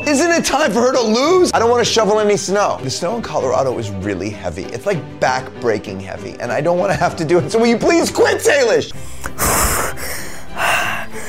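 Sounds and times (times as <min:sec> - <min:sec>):
speech: 0:00.1 - 0:09.7
person breathing heavily: 0:08.9 - 0:11.2.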